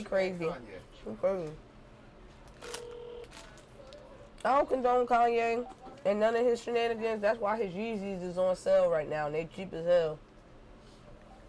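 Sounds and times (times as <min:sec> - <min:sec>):
speech: 0:00.0 - 0:01.7, 0:04.4 - 0:10.2
faint noise: 0:00.0 - 0:11.4
telephone ringback tone on an outgoing call: 0:02.7 - 0:03.2.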